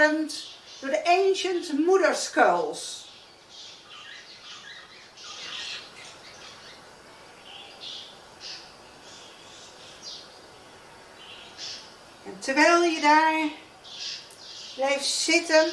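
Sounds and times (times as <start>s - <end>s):
speech: 0.0s - 3.0s, 12.4s - 13.6s, 14.8s - 15.7s
steady ambient hiss: 0.0s - 15.7s
birds calling and squawking: 2.8s - 10.5s, 11.1s - 12.2s, 12.8s - 15.7s.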